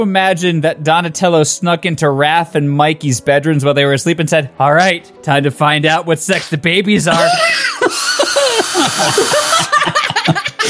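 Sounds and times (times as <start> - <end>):
speech: 0.0 - 8.1, 8.8 - 10.1
people laughing: 7.0 - 10.6
power drill next to a computer whirring: 7.9 - 9.8.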